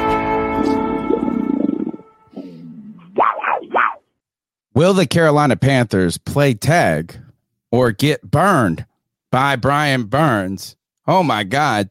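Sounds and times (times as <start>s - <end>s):
big cat roaring, growling and snarling: 0.7s - 4.0s
speech: 4.8s - 11.8s.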